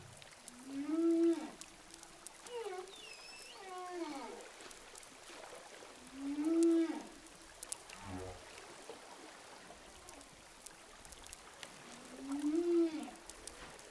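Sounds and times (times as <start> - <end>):
humpback whale song underwater offshore of Saint-Gilles Réunion: 0.5 - 4.6, 5.9 - 7.3, 11.8 - 13.3.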